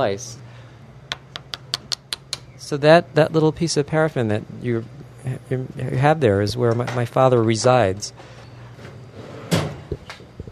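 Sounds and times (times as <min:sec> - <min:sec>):
speech: 0:00.0 - 0:00.5, 0:02.6 - 0:08.4
wooden drawer or cupboard sliding and shutting: 0:09.4 - 0:09.9.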